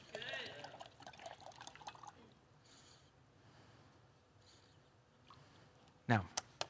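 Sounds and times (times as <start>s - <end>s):
faint water trickles: 0.0s - 2.4s
water from a gallon poured into a jar: 0.1s - 2.2s
speech: 6.1s - 6.4s.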